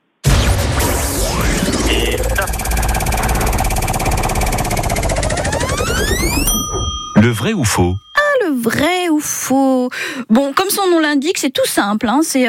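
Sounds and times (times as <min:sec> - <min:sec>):
rising sweeping tones: 0:00.3 - 0:07.6
game show prize wheel being spun, ticking: 0:02.1 - 0:09.0
speech: 0:07.2 - 0:12.4.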